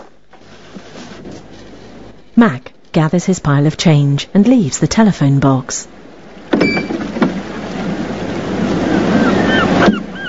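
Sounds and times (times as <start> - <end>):
speech: 2.4 - 6.0
gentle waves washing over rocks of a bay: 7.0 - 10.2.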